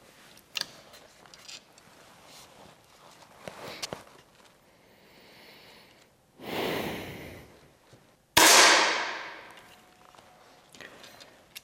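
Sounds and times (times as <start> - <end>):
soft breathy exhale: 4.8 - 7.6
target shooting rifle shot: 8.4 - 9.6.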